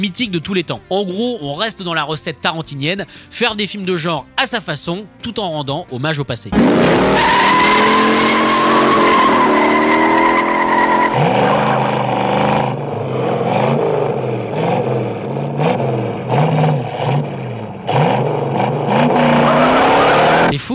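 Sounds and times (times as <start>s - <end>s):
speech: 0.0s - 8.0s
car engine roaring: 6.5s - 20.6s
car tires squealing during chase: 6.6s - 20.6s.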